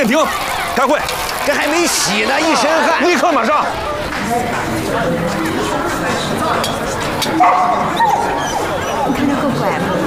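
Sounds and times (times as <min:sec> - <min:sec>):
speech: 0:00.0 - 0:08.2
murmur of people talking in a busy room: 0:00.0 - 0:10.0
laughter: 0:01.4 - 0:10.0
dog barking: 0:07.4 - 0:08.7
dog whimpering: 0:07.7 - 0:09.2.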